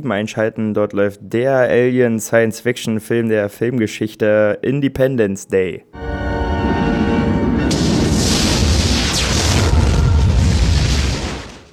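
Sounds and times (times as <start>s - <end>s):
speech: 0.0s - 6.2s
huge film explosion destroying a building: 6.7s - 11.7s.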